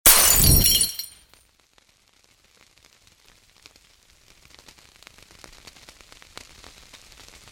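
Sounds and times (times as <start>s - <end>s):
bottle of petrol with a burning wick thrown: 0.1s - 1.2s.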